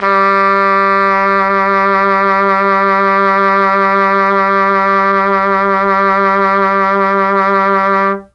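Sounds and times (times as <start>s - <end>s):
mellotron trumpet note G1: 0.0s - 8.3s.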